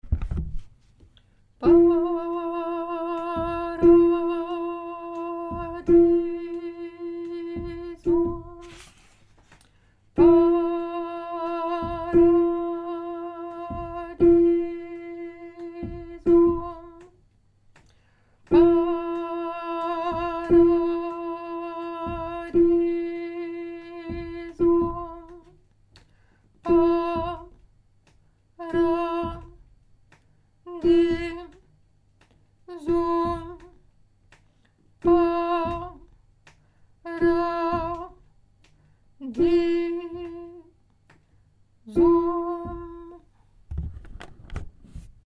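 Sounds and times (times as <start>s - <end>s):
soprano singing: 1.6s - 9.0s, 10.2s - 17.2s, 18.5s - 25.6s, 26.6s - 27.6s, 28.6s - 29.6s, 30.7s - 31.7s, 32.7s - 33.8s, 35.0s - 36.1s, 37.0s - 38.3s, 39.2s - 40.8s, 41.8s - 43.3s.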